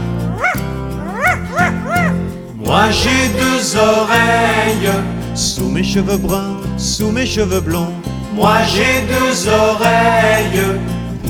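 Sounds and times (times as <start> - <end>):
dog barking at birds in a garden: 0.2 - 2.4
speech: 2.7 - 11.0.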